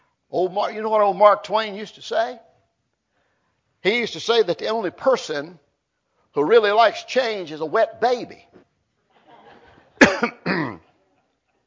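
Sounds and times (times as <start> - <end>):
speech: 0.4 - 2.5, 3.8 - 5.6, 6.3 - 8.6
faint murmur of breath: 3.1 - 3.6
man coughing: 10.0 - 10.9.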